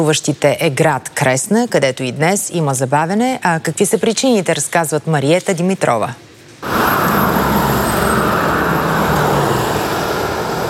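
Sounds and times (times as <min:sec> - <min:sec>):
speech: 0:00.0 - 0:07.0
car engines passing: 0:06.6 - 0:10.6.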